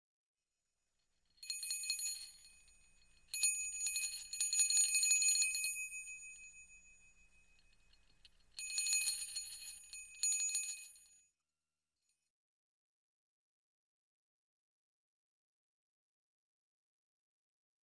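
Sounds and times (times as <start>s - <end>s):
small bells jingling: 1.4s - 11.2s.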